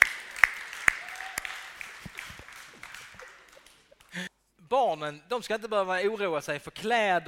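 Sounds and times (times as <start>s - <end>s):
audience applause: 0.0s - 4.2s
speech: 4.2s - 7.2s.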